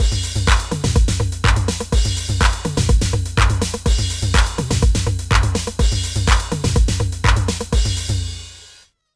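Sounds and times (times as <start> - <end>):
TR-8 drum machine pitch: 0.0 - 8.6.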